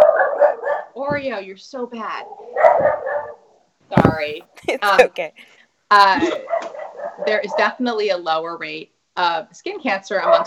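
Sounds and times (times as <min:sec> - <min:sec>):
dog barking: 0:00.0 - 0:01.0, 0:02.2 - 0:03.4, 0:06.4 - 0:07.8, 0:10.2 - 0:10.4
speech: 0:01.0 - 0:10.4
laughter: 0:04.1 - 0:05.5.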